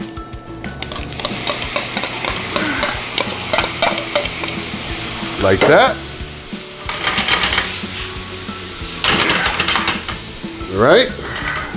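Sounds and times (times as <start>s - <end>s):
vegetables stir-frying in a hot oiled pan: 0.7s - 11.7s
utensil scraping and clinking against the pan: 0.8s - 6.0s, 6.8s - 8.0s, 8.9s - 10.3s, 11.0s - 11.7s
speech: 5.4s - 6.0s, 10.8s - 11.2s.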